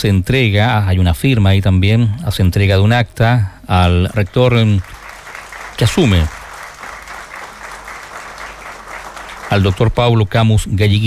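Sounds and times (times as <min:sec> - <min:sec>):
speech: 0:00.0 - 0:05.0, 0:05.8 - 0:06.4, 0:09.5 - 0:11.0
audience applauding at a university ceremony: 0:04.2 - 0:10.4.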